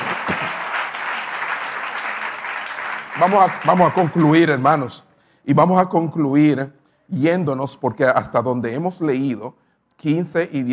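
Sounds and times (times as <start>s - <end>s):
congregation applauding: 0.0s - 4.9s
speech: 3.2s - 10.7s.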